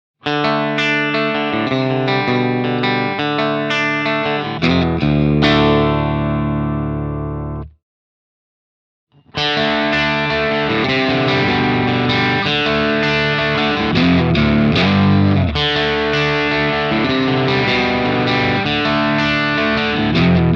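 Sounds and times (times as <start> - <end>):
Telecaster electric guitar through Bassman amp with crunch: 0.2 - 7.8, 9.2 - 20.5.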